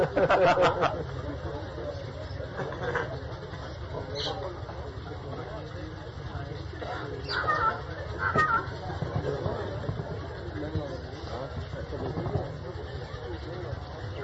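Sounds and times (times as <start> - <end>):
laughter: 0.0 - 3.8
faint murmuring voices: 0.0 - 14.2
outdoor noise: 0.0 - 14.2
crow calling: 6.9 - 8.8.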